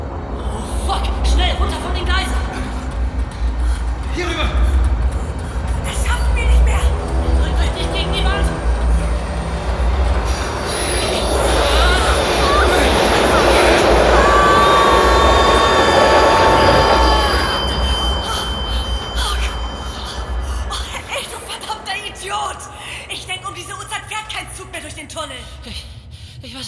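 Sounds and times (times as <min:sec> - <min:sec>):
train rushing past on tracks: 0:00.0 - 0:25.2
high metallic squealing of passing train: 0:05.7 - 0:23.0.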